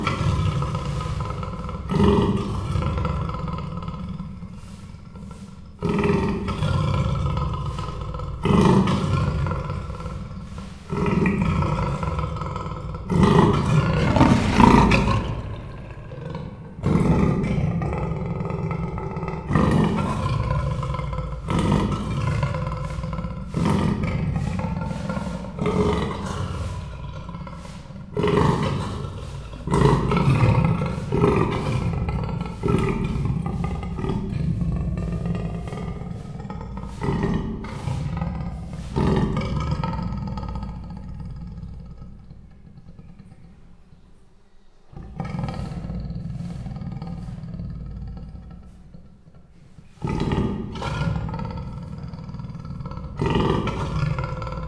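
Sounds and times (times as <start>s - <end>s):
angry Persian leopard at Miskolc zoo: 0.0s - 54.6s.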